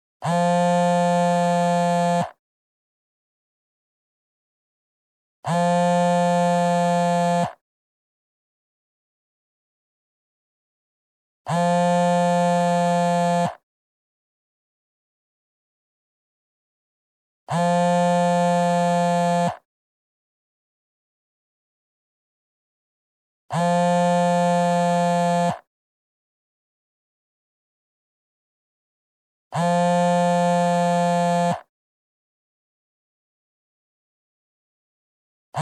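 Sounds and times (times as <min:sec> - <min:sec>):
phone vibrating: 0:00.2 - 0:02.4, 0:05.4 - 0:07.6, 0:11.5 - 0:13.6, 0:17.5 - 0:19.7, 0:23.5 - 0:25.7, 0:29.5 - 0:31.7.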